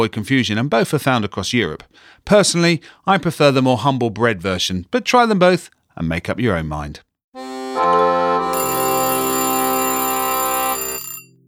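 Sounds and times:
speech: 0.0 - 7.1
kitchen timer ringing with a metallic jangle: 8.6 - 11.4.

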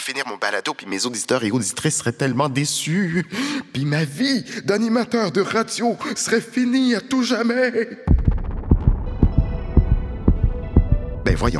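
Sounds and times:
speech: 0.0 - 8.2, 11.3 - 11.5
low hum: 8.1 - 11.3
fast pounding heartbeat: 8.1 - 11.5.

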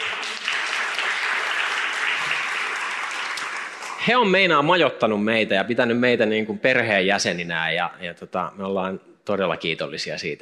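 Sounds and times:
audience applause: 0.0 - 4.1
speech: 4.0 - 10.4.

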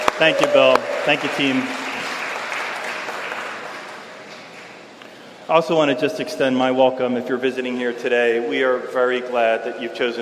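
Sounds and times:
audience applauding: 0.0 - 4.8
speech: 0.2 - 1.8, 5.5 - 10.2.

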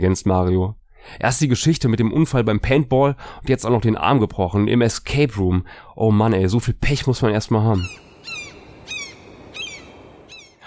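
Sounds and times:
speech: 0.0 - 8.1
bird squawking on a windowsill: 7.8 - 10.6.

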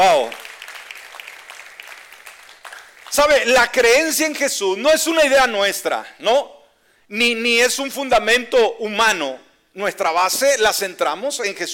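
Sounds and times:
congregation applauding: 0.0 - 4.1
speech: 3.2 - 11.7.

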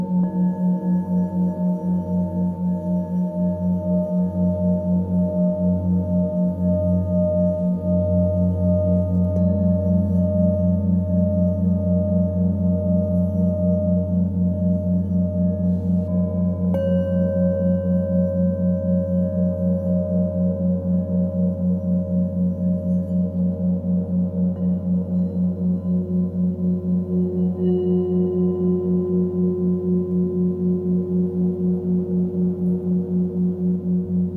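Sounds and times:
Tibetan singing bowls ringing with 4hz binaural beat: 0.0 - 34.3.

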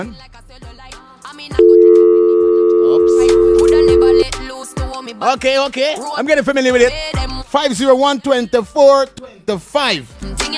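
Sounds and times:
speech: 0.0 - 0.4, 5.0 - 10.2
sounds: 1.6 - 4.2
steady electronic telephone tone for an incoming call: 1.6 - 4.3.

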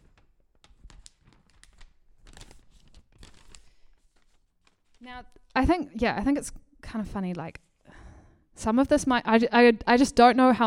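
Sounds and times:
sheet of paper handled and turned over: 0.0 - 5.6
speech: 5.0 - 7.6, 8.6 - 10.6.

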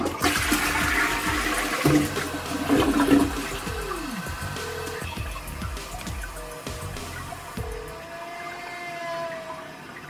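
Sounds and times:
toilet flushing with a rushing gush of water: 0.0 - 10.0
eerie wavering howl from plumbing pipes: 7.8 - 10.0.

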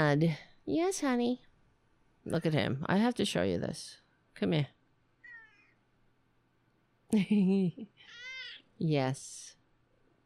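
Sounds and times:
speech: 0.0 - 1.5, 2.2 - 4.8, 7.1 - 8.2, 8.8 - 9.6
cat meowing: 5.2 - 5.6.

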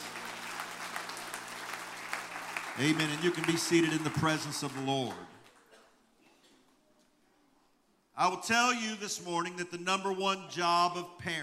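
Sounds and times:
audience clapping in praise: 0.0 - 5.8
speech: 2.8 - 5.4, 8.2 - 11.4.

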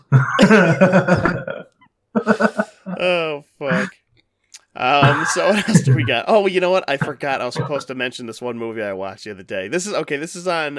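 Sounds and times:
rhythmic chuckling laughter: 0.0 - 3.0, 5.0 - 6.1, 7.6 - 7.8
long loud gurgling burp: 0.0 - 3.1, 3.7 - 3.9, 4.9 - 6.2, 7.0 - 7.8
speech: 0.4 - 1.5, 2.2 - 4.0, 4.8 - 10.7.

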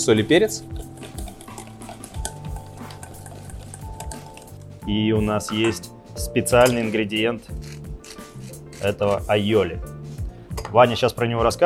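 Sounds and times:
speech: 0.0 - 1.2, 4.9 - 7.8, 8.8 - 9.9, 10.7 - 11.6
metal whisk beating mustard dressing, clicking against the bowl: 0.7 - 4.7.

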